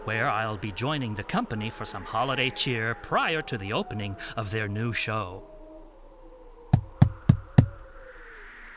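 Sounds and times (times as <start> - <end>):
speech: 0.0 - 5.5
knocking on a theater stage door: 6.7 - 7.8.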